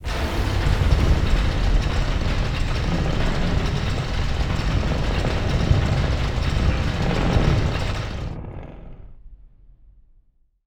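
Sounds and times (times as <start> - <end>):
cog statues initialising and rotating: 0.0 - 8.4.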